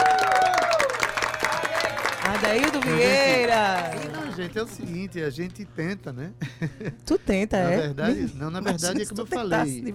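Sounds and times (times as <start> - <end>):
crowd applause: 0.0 - 4.8
speech: 2.4 - 9.9
laughter: 6.4 - 7.1.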